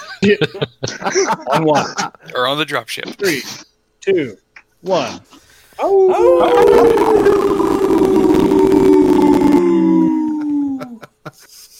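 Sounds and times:
laughter: 0.0 - 2.3, 9.8 - 11.7
speech: 0.2 - 7.8
group of people howling together: 5.8 - 11.1
scattered noises: 6.2 - 10.1.

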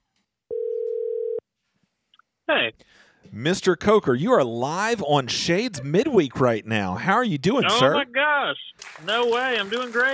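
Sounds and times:
electronic ringback tone of an outgoing phone call: 0.5 - 1.4
speech: 2.5 - 10.1.

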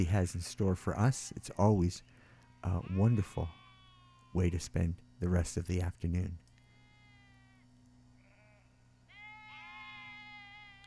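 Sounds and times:
speech: 0.0 - 3.6, 4.4 - 6.4
sheep bleating: 2.2 - 4.6, 6.6 - 7.6, 8.2 - 10.8.

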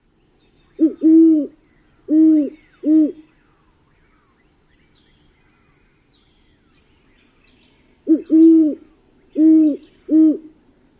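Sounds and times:
great horned owl hooting: 0.8 - 3.6, 8.0 - 10.6.

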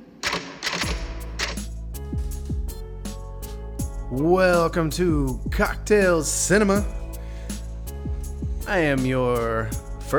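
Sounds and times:
typewriter keystrokes: 0.2 - 1.7
sustained music with low tones swooping downward: 0.8 - 10.1
speech: 4.1 - 7.0, 8.7 - 10.1.

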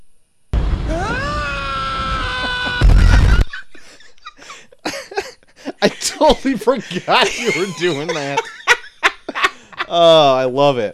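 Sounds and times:
man screaming with a raspy burst: 0.9 - 3.5
laughter: 2.2 - 10.6
speech: 5.8 - 8.6, 9.9 - 10.9.

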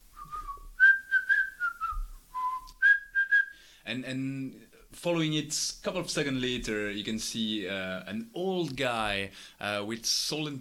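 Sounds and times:
person whistling a short melodic tune: 0.1 - 3.6
speech: 3.9 - 10.6.

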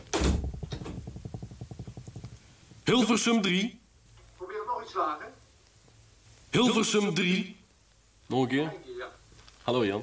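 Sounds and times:
door shutting with a thud: 0.0 - 1.1
rhythmic mechanical rattling: 0.0 - 3.3
speech: 2.9 - 3.8, 4.9 - 5.4, 6.5 - 7.6, 8.3 - 10.0.

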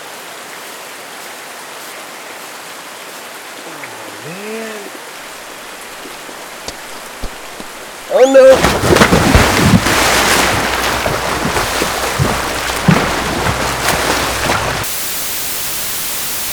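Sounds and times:
speech: 8.2 - 9.0
sharp drips: 8.4 - 16.5
heavy rain: 8.6 - 16.5.

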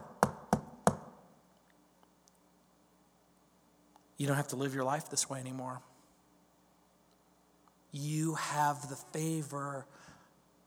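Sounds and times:
firm knocking on a door: 0.0 - 1.2
speech: 4.2 - 5.9, 7.9 - 10.1.

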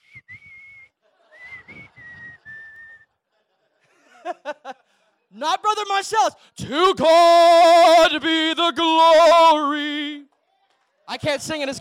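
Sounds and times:
person whistling a short tune: 0.0 - 3.1
chuckling laughter: 1.0 - 5.0
speech: 4.2 - 4.7, 5.3 - 10.3, 11.1 - 11.8.

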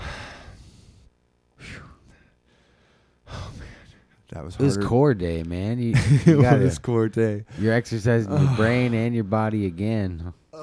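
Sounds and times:
heavy breathing blown straight into a microphone: 0.0 - 4.3
speech: 4.3 - 10.6.

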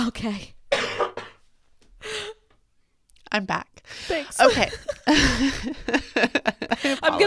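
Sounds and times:
speech: 0.1 - 0.6, 3.4 - 7.2
person coughing: 0.7 - 1.4
laughter: 4.1 - 7.2.

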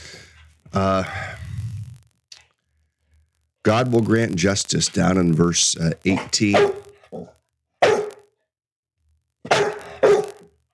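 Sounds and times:
speech: 0.7 - 1.3, 3.6 - 7.3
dog giving deep loud barks: 6.1 - 8.3, 9.5 - 10.5.

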